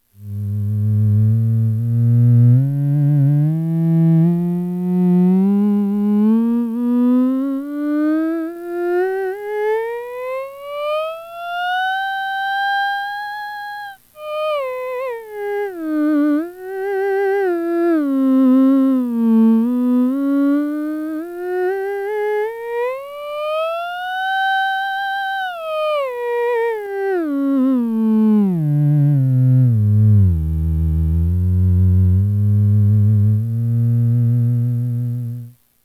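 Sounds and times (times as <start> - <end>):
theremin: 0.2 - 35.6.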